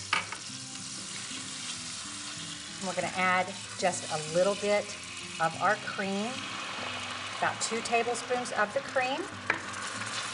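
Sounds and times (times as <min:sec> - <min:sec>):
butter sizzling in a hot pan with the heat turned off: 0:00.0 - 0:10.3
speech: 0:02.8 - 0:06.5, 0:07.4 - 0:09.6.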